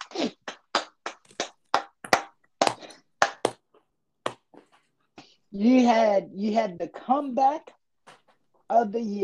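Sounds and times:
one or two people clapping: 0:00.0 - 0:03.6
speech: 0:05.5 - 0:07.8, 0:08.7 - 0:09.2.

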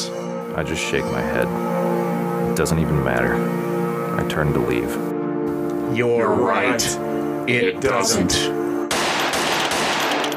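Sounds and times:
speech: 0:00.6 - 0:05.1, 0:05.9 - 0:08.6
gunfire: 0:08.9 - 0:10.3.

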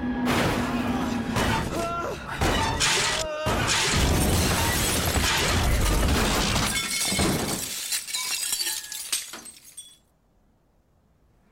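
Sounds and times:
plane crashing into the ground with shattering and breaking debris: 0:00.2 - 0:10.0.

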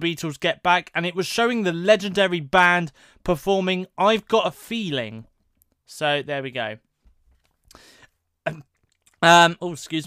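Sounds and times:
speech: 0:00.0 - 0:05.3, 0:05.9 - 0:06.8, 0:07.7 - 0:10.0
stifled cough: 0:08.4 - 0:08.7.

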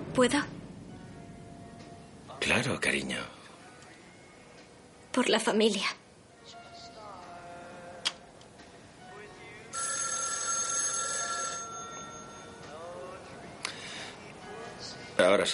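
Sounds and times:
speech: 0:00.2 - 0:00.6, 0:02.4 - 0:03.4, 0:05.2 - 0:06.0, 0:15.2 - 0:15.5
electronic telephone ringing inside a family home: 0:09.7 - 0:13.0.

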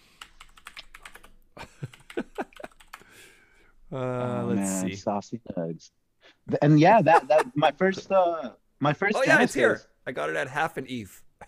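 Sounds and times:
typing on a computer keyboard: 0:00.2 - 0:03.0
speech: 0:03.9 - 0:11.2.

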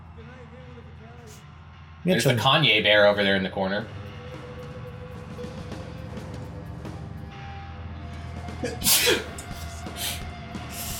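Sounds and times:
speech: 0:02.0 - 0:04.0, 0:08.8 - 0:09.3
person sneezing: 0:08.6 - 0:10.2.

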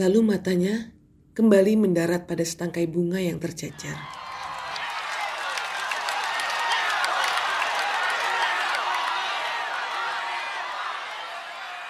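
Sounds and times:
speech: 0:00.0 - 0:04.2
large crowd applause: 0:04.0 - 0:11.8.

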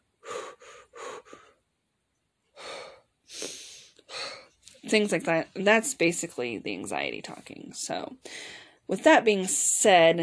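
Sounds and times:
person demonstrating short rapid chest breathing: 0:00.2 - 0:01.6, 0:02.6 - 0:04.6
speech: 0:04.9 - 0:10.2.

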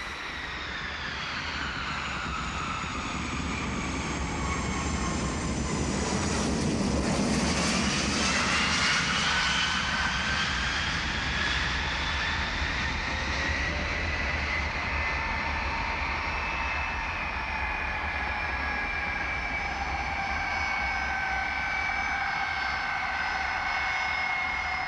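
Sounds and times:
airplane engine roar with whining tones: 0:00.0 - 0:24.8.

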